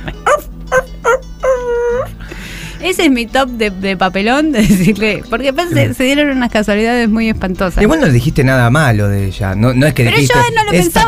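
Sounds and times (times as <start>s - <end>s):
dog whimpering whine: 0.2s - 2.1s
dog barking: 0.3s - 1.2s
speech: 2.9s - 11.0s.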